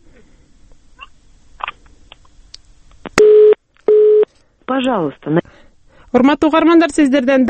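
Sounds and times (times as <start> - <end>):
faint telephone line clicks and line noise: 1.6 - 4.4
telephone busy tone from a failed call: 3.2 - 4.2
speech: 4.7 - 5.5, 6.1 - 7.4.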